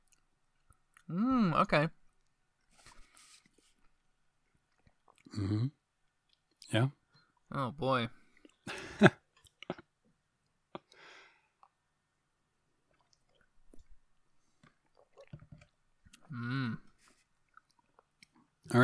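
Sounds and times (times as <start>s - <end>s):
speech: 1.1s - 2.0s, 5.4s - 5.8s, 6.7s - 9.2s, 16.3s - 16.8s, 18.7s - 18.8s
sipping and swallowing a drink: 4.7s - 5.4s, 12.8s - 18.5s
person humming: 16.3s - 16.9s.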